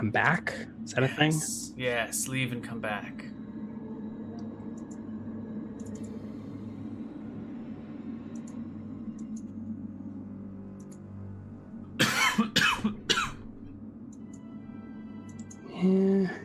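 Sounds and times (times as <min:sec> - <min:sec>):
speech: 0:00.0 - 0:03.4
steady low hum: 0:00.0 - 0:16.4
person coughing harshly: 0:12.0 - 0:13.4.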